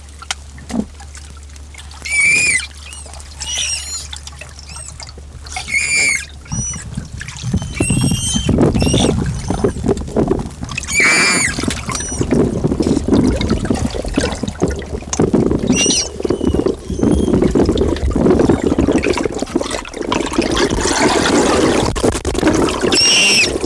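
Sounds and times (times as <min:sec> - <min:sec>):
rushing splashing water: 0:00.0 - 0:23.6
frightened manatee squeaks: 0:01.9 - 0:10.0, 0:10.7 - 0:13.0, 0:15.6 - 0:18.8, 0:22.8 - 0:23.6.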